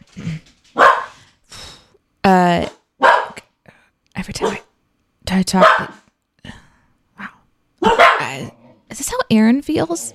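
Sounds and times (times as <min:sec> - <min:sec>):
dogs barking: 0:00.8 - 0:01.2, 0:03.0 - 0:03.4, 0:04.4 - 0:04.7, 0:05.6 - 0:06.1, 0:07.8 - 0:08.5
speech: 0:02.3 - 0:02.8, 0:04.2 - 0:04.6, 0:05.4 - 0:06.0, 0:09.3 - 0:10.1.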